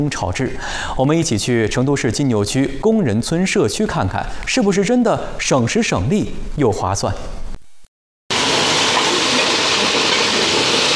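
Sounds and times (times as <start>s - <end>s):
speech: 0.0s - 7.4s
stove flame roaring: 8.3s - 10.9s
wok sizzling loudly: 8.3s - 10.9s.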